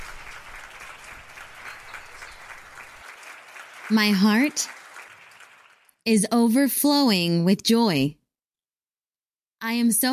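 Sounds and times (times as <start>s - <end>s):
audience applause: 0.0s - 6.0s
speech: 3.9s - 4.8s, 6.0s - 8.2s, 9.6s - 10.1s.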